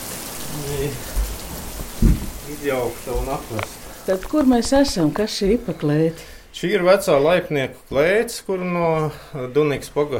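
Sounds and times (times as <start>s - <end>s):
heavy rain pouring outside an old granary: 0.0s - 5.6s
speech: 0.6s - 1.2s, 2.5s - 10.1s
dull low thuds: 1.0s - 3.5s.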